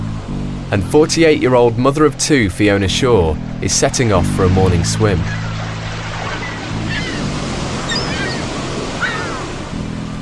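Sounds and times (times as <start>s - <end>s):
low droning hum: 0.0s - 10.2s
sea waves breaking on the shore at Brighton on a June morning: 0.0s - 10.2s
speech: 0.7s - 5.5s
faint high calls: 5.2s - 9.6s.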